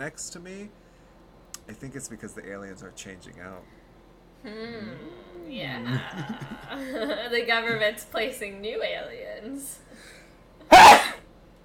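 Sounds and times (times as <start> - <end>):
speech: 0.0 - 0.8, 1.7 - 3.8, 4.4 - 11.1
laughter: 5.8 - 7.9
single sharp sneeze: 10.7 - 11.3.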